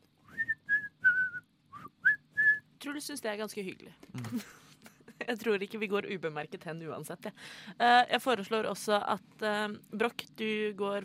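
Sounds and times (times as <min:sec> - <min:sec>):
person whistling a tune: 0:00.3 - 0:02.6
speech: 0:02.8 - 0:04.6, 0:05.3 - 0:11.0.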